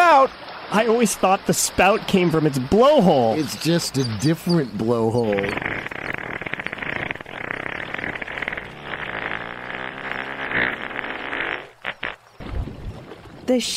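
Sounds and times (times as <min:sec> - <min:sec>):
speech: 0:00.2 - 0:06.2, 0:13.5 - 0:13.7
humpback whale fart: 0:05.2 - 0:12.4.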